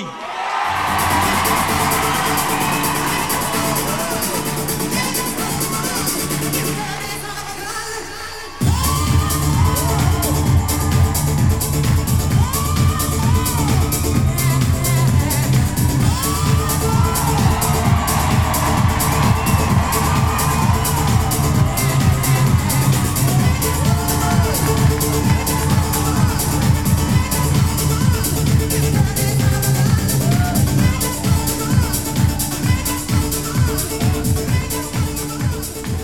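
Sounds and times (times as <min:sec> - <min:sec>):
whoops and screams from the crowd: 0:00.0 - 0:04.5, 0:08.6 - 0:14.2, 0:16.0 - 0:28.4, 0:30.0 - 0:31.4
large live crowd cheering and applauding: 0:00.0 - 0:36.0.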